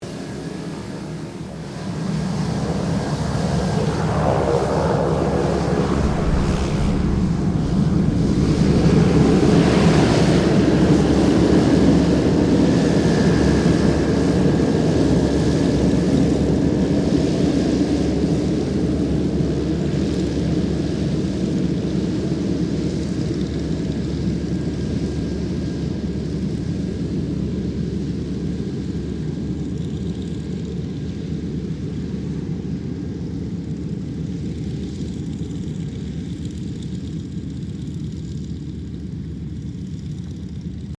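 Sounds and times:
2007 King Air 350 turboprop aircraft taxiing: 0.0s - 40.9s.

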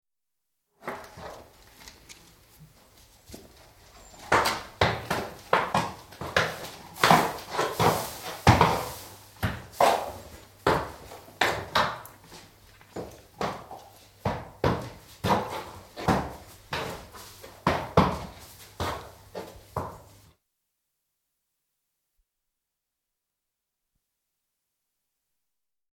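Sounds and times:
horse walking around concrete floored stable: 0.8s - 20.3s.

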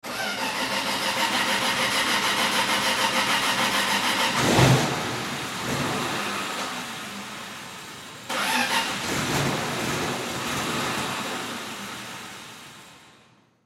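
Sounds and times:
aircraft tow tractor engine starting and stalling: 0.0s - 6.7s, 8.3s - 11.4s.

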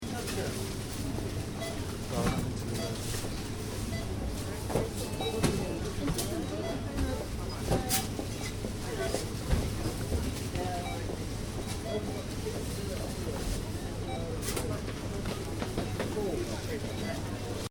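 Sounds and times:
supermarket interior ambience: 0.0s - 17.6s.

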